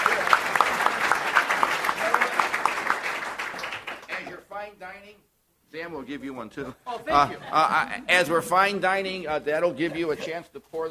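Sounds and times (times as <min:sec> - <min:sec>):
audience applause at a wine talk event: 0:00.0 - 0:04.3
speech: 0:04.8 - 0:10.8.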